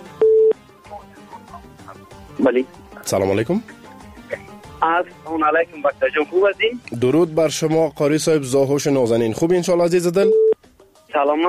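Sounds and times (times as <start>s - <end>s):
short steady beep on a telephone line as a listener's call is connected: 0.2s - 0.6s, 10.2s - 10.6s
speech: 2.4s - 3.8s, 4.8s - 10.4s, 11.1s - 11.4s.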